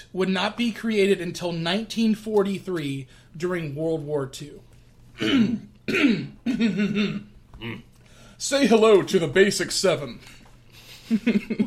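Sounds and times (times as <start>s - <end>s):
speech: 0.0s - 10.4s, 11.1s - 11.6s
person clearing throat: 5.2s - 7.9s.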